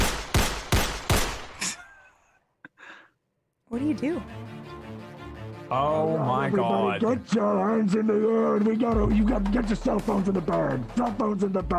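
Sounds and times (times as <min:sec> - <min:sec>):
gunshots fired into the air by a masked man: 0:00.0 - 0:01.6
speech: 0:03.7 - 0:04.6, 0:05.7 - 0:11.7.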